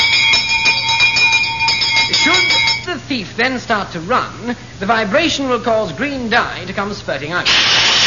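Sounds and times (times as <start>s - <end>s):
alarm gong on an anti-theft bag ringing: 0.0s - 2.9s
speech: 3.1s - 7.9s.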